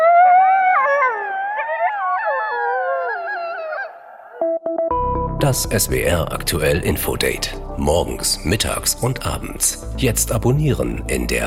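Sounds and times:
chorus of coyotes howling with yips: 0.0s - 4.5s
speech: 5.4s - 11.4s.

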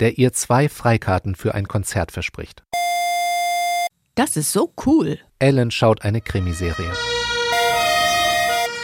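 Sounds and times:
speech: 0.0s - 2.8s, 4.2s - 7.1s
emergency vehicle siren in a hi-lo pattern: 6.2s - 8.8s.

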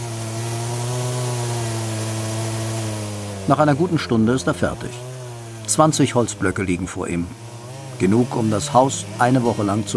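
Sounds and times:
chainsaw cutting through a tree trunk: 0.0s - 9.9s
speech: 3.5s - 5.1s, 5.7s - 7.4s, 8.0s - 9.9s.

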